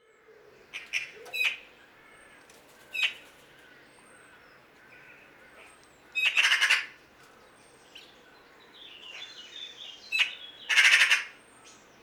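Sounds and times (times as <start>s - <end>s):
steady background noise: 0.0s - 12.0s
Eurasian magpie Pica pica giving harsh, rasping calls: 6.2s - 6.9s, 10.1s - 11.3s.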